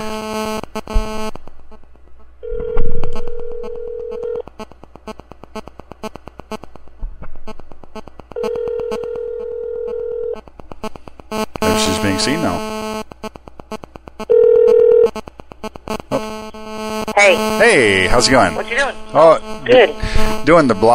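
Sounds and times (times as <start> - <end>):
harsh crackling static buzz: 0.0 - 20.9
electronic ringback tone of an outgoing call to a mobile phone: 2.4 - 4.4, 8.4 - 10.4, 14.3 - 15.1
speech: 11.8 - 12.7, 17.3 - 20.9.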